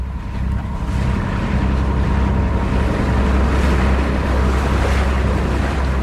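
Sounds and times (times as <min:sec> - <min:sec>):
boat engine low drone: 0:00.0 - 0:06.0
waves rushing and slapping on open water: 0:00.0 - 0:06.0.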